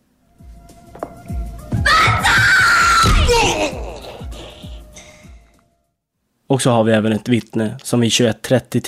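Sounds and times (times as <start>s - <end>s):
dull thuds: 0.8s - 3.6s
loud sustained scream: 1.8s - 3.8s
speech: 6.5s - 8.8s.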